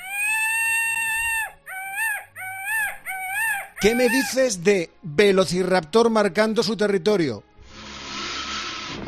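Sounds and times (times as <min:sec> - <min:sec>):
peacock calling: 0:00.0 - 0:04.5
speech: 0:03.8 - 0:07.5.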